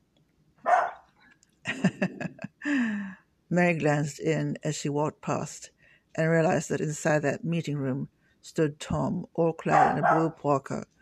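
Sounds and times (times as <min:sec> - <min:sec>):
dog barking: 0:00.6 - 0:01.1, 0:09.7 - 0:10.3
laughter: 0:01.7 - 0:02.6
speech: 0:02.0 - 0:02.3, 0:03.5 - 0:10.9.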